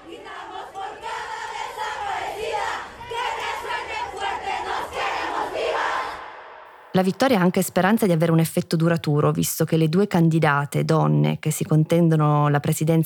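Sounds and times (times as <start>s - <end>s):
large crowd of women singing a protest song at a demonstration: 0.0s - 6.7s
speech: 7.0s - 13.0s.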